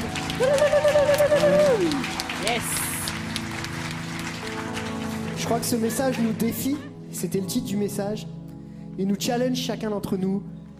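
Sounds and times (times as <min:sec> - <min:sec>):
congregation applauding: 0:00.0 - 0:06.9
speech: 0:00.4 - 0:00.7, 0:05.5 - 0:08.4, 0:09.0 - 0:10.6.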